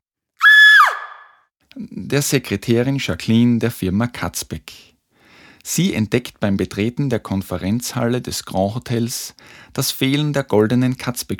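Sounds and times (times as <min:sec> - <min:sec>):
loud piercing scream of a woman: 0:00.4 - 0:01.4
speech: 0:01.8 - 0:04.9, 0:05.6 - 0:11.3.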